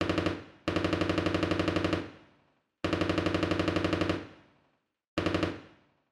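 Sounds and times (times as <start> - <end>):
distant machine gun burst: 0.0 - 2.1, 2.9 - 4.3, 5.2 - 5.8.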